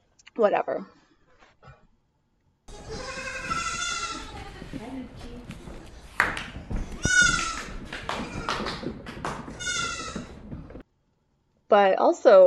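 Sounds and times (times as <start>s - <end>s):
speech: 0.4s - 1.0s, 11.7s - 12.4s
goat bleating: 2.7s - 4.5s, 7.0s - 8.6s, 9.6s - 10.4s
rustling and shuffling: 2.7s - 10.8s.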